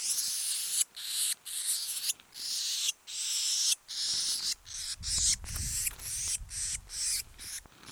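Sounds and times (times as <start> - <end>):
Eurasian blue tit Cyanistes caeruleus harsh hissing churring: 0.0 - 7.7.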